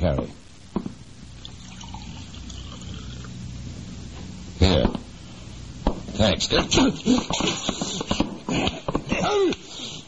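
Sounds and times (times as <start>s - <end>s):
speech: 0.1s - 0.5s, 6.2s - 9.6s
water poured from carafe into glass: 1.4s - 3.3s.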